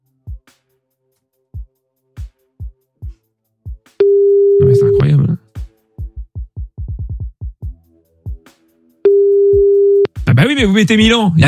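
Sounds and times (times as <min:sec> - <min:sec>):
loud steady telephone line tone: 0:04.0 - 0:05.1, 0:09.1 - 0:10.1
low thumping telephone dial pulses: 0:09.1 - 0:10.1
speech: 0:10.6 - 0:11.4.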